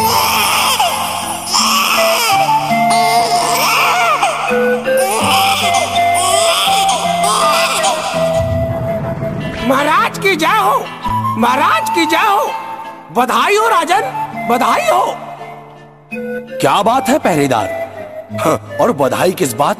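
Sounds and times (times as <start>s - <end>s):
newborn baby crying: 0.0s - 8.7s
sustained musical tones: 1.5s - 19.1s
speech: 10.3s - 15.3s, 16.1s - 19.7s.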